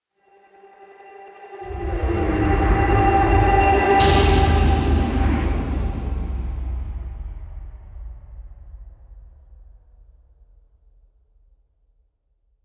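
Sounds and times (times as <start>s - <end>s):
impact: 1.5s - 9.0s.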